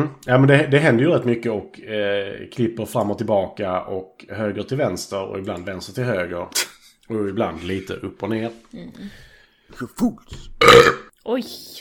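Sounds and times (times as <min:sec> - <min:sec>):
speech: 0:00.0 - 0:11.8
loud raspy burp: 0:10.6 - 0:11.1.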